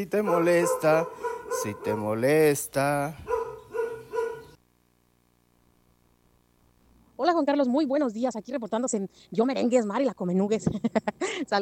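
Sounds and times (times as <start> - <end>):
speech: 0.0 - 3.3, 7.2 - 11.5
dog barking: 0.2 - 2.4, 3.2 - 4.6.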